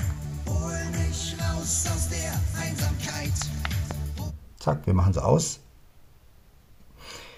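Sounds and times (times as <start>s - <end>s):
music from a 2014 Bose SoundLink 3 portable Bluetooth speaker: 0.0s - 4.4s
speech: 4.6s - 5.6s.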